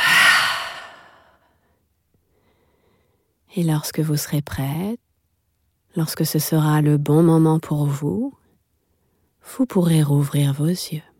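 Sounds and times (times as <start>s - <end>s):
deep breath in through the nose: 0.0s - 1.3s
forceful breath blown out through the mouth during a relaxation exercise: 0.0s - 1.3s
speech: 3.6s - 5.0s, 6.0s - 8.4s, 9.4s - 11.1s.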